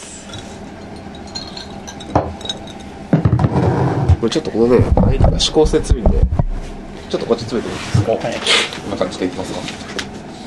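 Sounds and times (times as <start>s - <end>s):
faint room hum: 0.0s - 10.4s
beer glasses clinking in a toast: 0.2s - 3.0s
speech: 4.2s - 9.8s.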